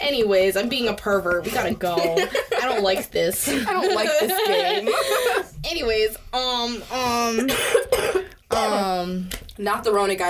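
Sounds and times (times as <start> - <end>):
speech: 0.1 - 10.2
laughter: 1.5 - 5.5
person coughing: 7.4 - 8.8.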